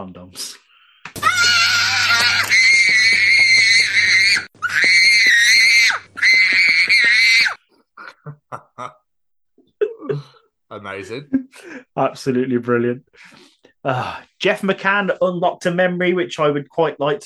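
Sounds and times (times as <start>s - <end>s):
speech: 0.0s - 0.6s, 10.9s - 17.2s
child screaming in a tantrum in a supermarket: 1.2s - 7.6s.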